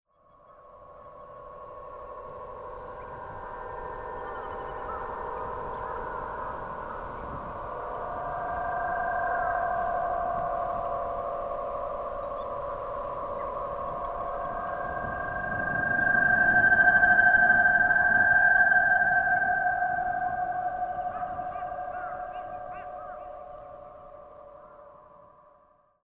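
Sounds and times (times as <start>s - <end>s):
UFO-style eerie strings: 0.6s - 25.4s.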